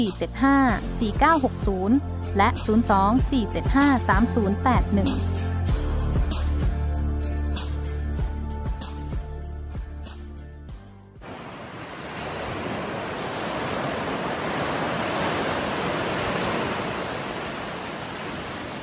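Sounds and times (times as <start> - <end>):
speech: 0.0 - 5.5
music: 0.0 - 11.2
ocean waves washing onto a white sand beach: 11.2 - 18.8.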